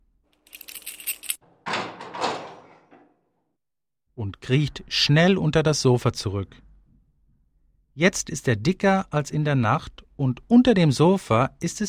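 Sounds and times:
key turning in a door lock: 0.4 - 2.5
speech: 4.2 - 6.7, 8.0 - 11.8.

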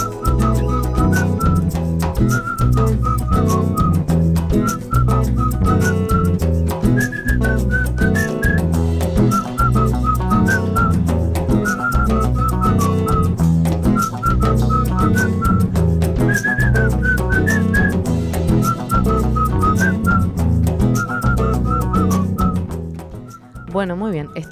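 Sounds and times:
full band accompaniment of steady bass and percussion: 0.0 - 24.4
person whistling a melody: 0.0 - 24.4.

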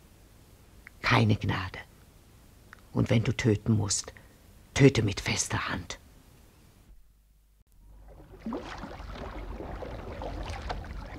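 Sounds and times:
speech: 1.2 - 1.8, 2.9 - 4.2, 4.8 - 6.0
water splashing and sloshing as a light canoe is pushed out into a river: 7.8 - 11.1.

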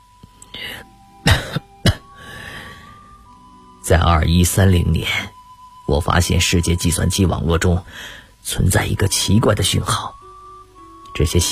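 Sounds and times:
faint steady hum: 0.0 - 11.4
man coughing: 1.2 - 2.2
speech: 3.9 - 10.2, 11.2 - 11.4.

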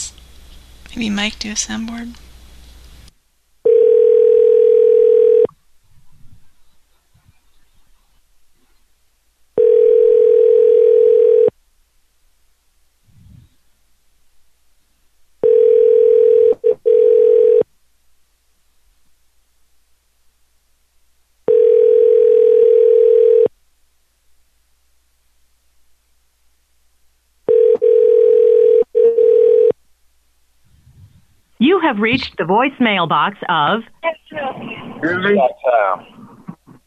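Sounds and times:
speech: 0.9 - 2.2, 31.9 - 34.0, 35.0 - 36.1
telephone ringback tone while a call waits to be answered: 3.6 - 5.5, 9.6 - 11.5, 15.4 - 17.6, 21.5 - 23.5, 27.5 - 29.8.

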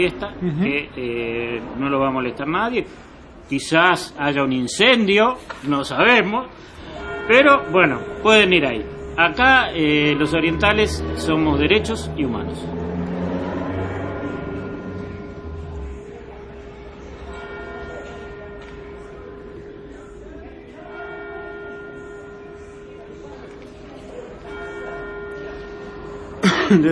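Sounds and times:
speech: 0.0 - 12.8
church bells ringing: 5.8 - 26.8
low rumble: 6.8 - 17.4.

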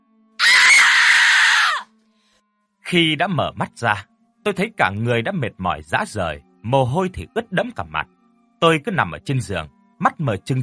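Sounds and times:
woman screaming loudly: 0.4 - 1.9
speech: 2.9 - 10.6.

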